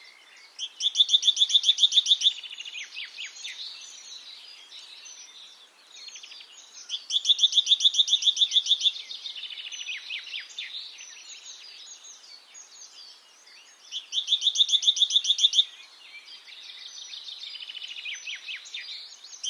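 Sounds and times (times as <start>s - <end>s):
great tit Parus major calling: 0.4s - 4.2s, 6.0s - 12.0s, 13.7s - 15.8s.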